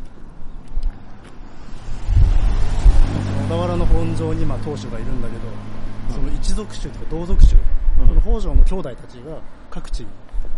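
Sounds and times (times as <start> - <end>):
car approaching and passing by: 0.0 - 8.6
wind buffeting the microphone outdoors: 0.0 - 9.0, 9.8 - 10.5
speech: 3.6 - 10.5.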